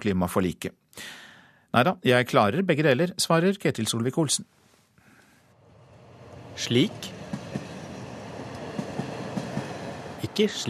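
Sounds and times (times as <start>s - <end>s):
speech: 0.0s - 4.6s, 6.6s - 7.7s, 10.4s - 10.6s
train rumbling on tracks: 5.6s - 10.6s
train wheels clacking over rail joints: 6.9s - 10.2s.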